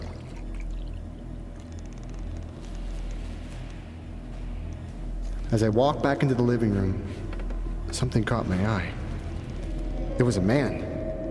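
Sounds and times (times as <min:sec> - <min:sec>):
water pouring from a pitcher into a glass in a kitchen: 0:00.0 - 0:01.3
low rumble: 0:00.0 - 0:11.2
speech: 0:05.5 - 0:07.3, 0:07.9 - 0:09.0, 0:10.2 - 0:10.8.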